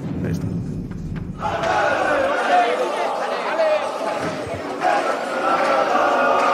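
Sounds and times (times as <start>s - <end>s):
low thumps: 0.0s - 2.4s
crowd of fans chanting and cheering outdoors at players boarding a team bus: 1.3s - 6.5s.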